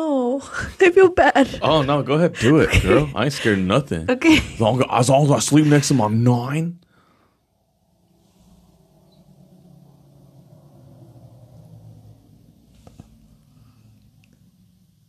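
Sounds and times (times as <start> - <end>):
speech: 0.0 - 6.8
laughter: 1.0 - 6.2
car passing by outdoors: 7.1 - 15.0.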